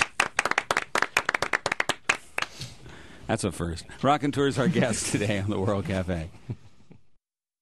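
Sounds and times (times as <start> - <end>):
applause from a small group: 0.0 - 2.6
speech: 3.3 - 6.6.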